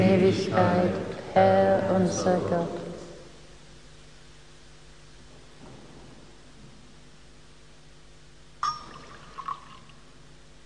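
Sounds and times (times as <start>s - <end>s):
speech: 0.3s - 2.8s
water poured into wine in a metal chalice: 8.6s - 10.0s
soft drips: 8.6s - 10.1s
faint ringing tone of a metal chalice: 8.6s - 10.2s.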